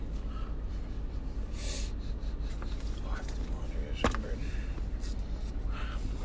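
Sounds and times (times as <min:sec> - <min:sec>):
low steady hum: 0:00.0 - 0:06.2
person sniffing a wristwatch: 0:01.5 - 0:02.6.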